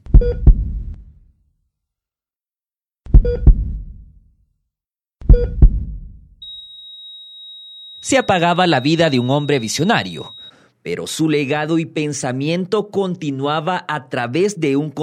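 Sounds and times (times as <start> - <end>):
heartbeat sound effect thumps: 0.0 - 1.2, 3.1 - 4.2, 5.2 - 6.4
steady high electronic beep: 6.4 - 10.5
speech: 8.1 - 15.0.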